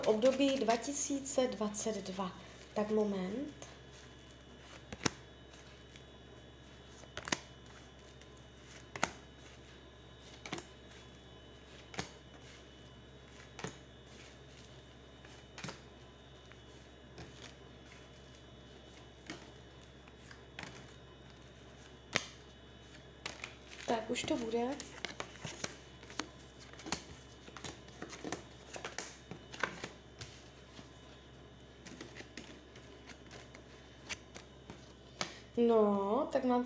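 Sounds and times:
tarot cards being shuffled for a yearly reading: 0:00.0 - 0:01.2, 0:06.6 - 0:12.6, 0:13.2 - 0:31.1, 0:31.8 - 0:35.4
speech: 0:00.0 - 0:03.7, 0:24.2 - 0:25.0, 0:35.6 - 0:36.6
faint steady hum: 0:00.0 - 0:36.6.

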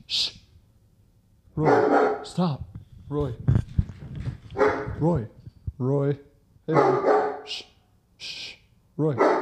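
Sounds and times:
speech: 0:00.1 - 0:00.4, 0:01.6 - 0:03.6, 0:04.6 - 0:08.4, 0:09.0 - 0:09.4
dog barking in sharp yelps: 0:01.6 - 0:02.4, 0:04.6 - 0:05.0, 0:06.7 - 0:07.6, 0:09.2 - 0:09.4.

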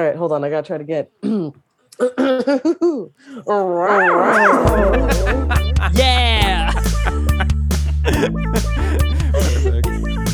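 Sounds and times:
speech: 0:00.0 - 0:07.2, 0:08.0 - 0:08.8
person imitating a cougar roar: 0:03.6 - 0:06.6
laughter: 0:03.8 - 0:09.9.

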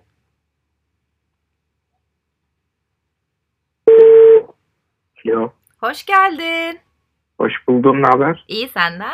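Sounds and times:
ringback tone of an outgoing phone call: 0:03.9 - 0:04.5
speech: 0:05.3 - 0:09.1.

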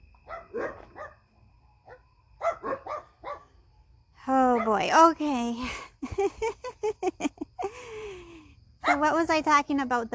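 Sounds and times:
low steady hum: 0:00.0 - 0:10.1
dog barking: 0:00.3 - 0:01.2, 0:01.9 - 0:03.5, 0:04.5 - 0:04.8, 0:08.8 - 0:09.1
speech: 0:04.7 - 0:07.2, 0:08.9 - 0:10.1.

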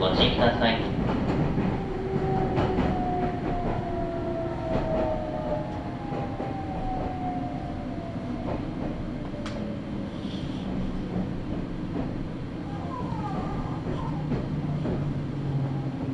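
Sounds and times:
speech: 0:00.0 - 0:01.1
local commuter train running from Agui to Utsumi in Japan: 0:00.0 - 0:16.1
train wheels clacking over rail joints: 0:00.0 - 0:16.1.

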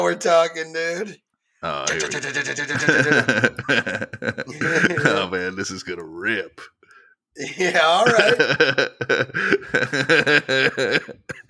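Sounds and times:
speech: 0:00.0 - 0:06.8, 0:07.4 - 0:11.4
laughter: 0:01.7 - 0:06.5, 0:07.4 - 0:11.4
harsh rasping coughs: 0:04.4 - 0:05.3, 0:09.3 - 0:11.4.

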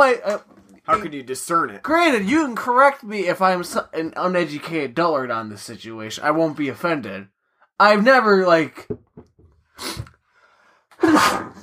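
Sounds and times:
speech: 0:00.0 - 0:10.1
person sneezing: 0:09.8 - 0:10.1, 0:11.0 - 0:11.6.

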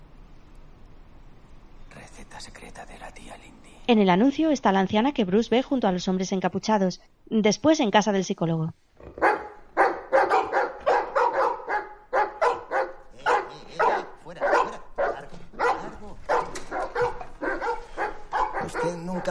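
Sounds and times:
speech: 0:02.2 - 0:09.2
several dogs barking: 0:09.1 - 0:19.2.

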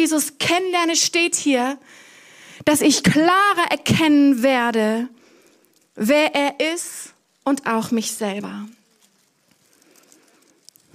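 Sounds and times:
speech: 0:00.0 - 0:05.2, 0:06.0 - 0:08.8
crackling and rustling of popcorn bags from an audience: 0:04.4 - 0:10.9.

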